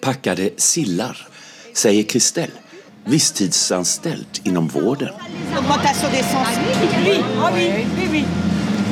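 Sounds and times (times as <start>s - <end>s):
speech: 0.0s - 8.9s
steady low engine rumble from traffic: 0.0s - 8.9s
overlapping voices chattering at a bus stop by the central station in Dunkirk France: 1.4s - 8.4s.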